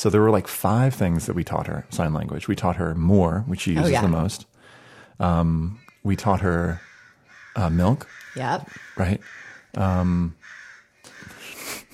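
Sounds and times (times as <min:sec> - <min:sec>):
speech: 0:00.0 - 0:04.6, 0:05.2 - 0:06.9, 0:07.6 - 0:10.6
crow cawing harshly: 0:06.8 - 0:11.4.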